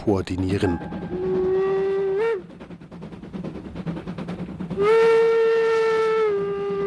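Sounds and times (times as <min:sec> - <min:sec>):
speech: 0:00.0 - 0:01.2, 0:04.8 - 0:05.1
steam train chugging as it pulls away: 0:00.0 - 0:06.8
steam train whistle: 0:00.7 - 0:02.6, 0:04.8 - 0:06.8.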